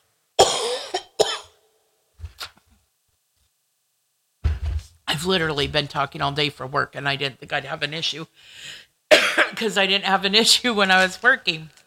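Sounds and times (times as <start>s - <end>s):
short coughing fit with harsh and throaty coughs: 0.4s - 1.6s, 9.1s - 9.6s
speech: 5.1s - 8.9s, 9.5s - 11.8s.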